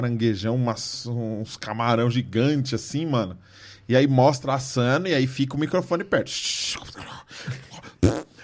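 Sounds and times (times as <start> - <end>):
speech: 0.0 - 8.2
voice imitating the farting squirt of a ketchup bottle: 6.9 - 8.4.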